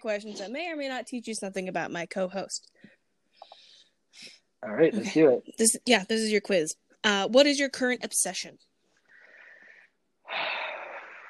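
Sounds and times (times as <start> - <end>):
speech: 0.0 - 2.8, 4.1 - 8.7
heavy breathing: 9.1 - 11.2.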